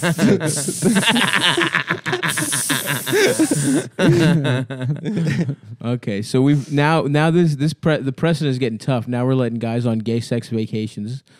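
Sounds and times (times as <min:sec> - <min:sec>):
voice imitating sizzling on hot coals: 0:00.0 - 0:01.5, 0:02.2 - 0:03.6
speech: 0:00.0 - 0:02.0, 0:02.9 - 0:11.3
laughter: 0:00.0 - 0:05.8.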